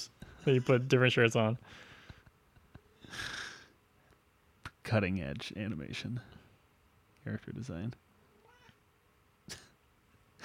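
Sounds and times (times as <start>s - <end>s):
speech: 0.4s - 1.9s, 3.1s - 3.4s, 4.9s - 6.4s, 7.2s - 8.0s
cat meowing loudly: 8.4s - 8.8s.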